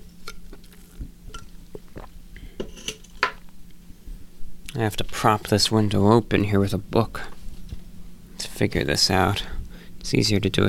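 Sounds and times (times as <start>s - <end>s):
low steady hum: 0.0s - 10.6s
person sipping water: 0.2s - 2.6s
speech: 4.7s - 7.4s, 8.6s - 10.6s.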